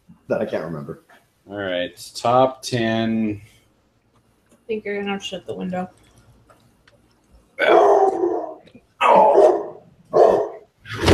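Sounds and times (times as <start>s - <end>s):
speech: 0.3s - 3.5s, 4.7s - 6.0s
dog barking: 7.6s - 8.6s, 9.2s - 10.7s.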